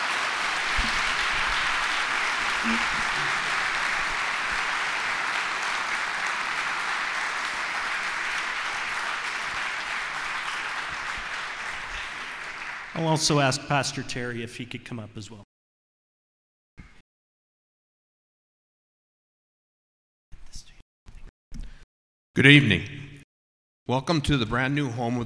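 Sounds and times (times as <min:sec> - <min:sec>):
audience in a new church building applauding presenters: 0:00.0 - 0:13.4
speech: 0:02.6 - 0:03.4, 0:13.0 - 0:15.5, 0:22.4 - 0:23.0, 0:23.9 - 0:25.2.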